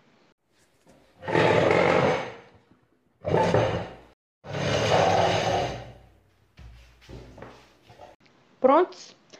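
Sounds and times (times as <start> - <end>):
students dragging chairs across a hard floor: 1.1 - 2.6, 3.2 - 6.1, 6.7 - 8.2
shorter scuffs and knocks of chairs: 6.2 - 8.2
speech: 8.7 - 9.2.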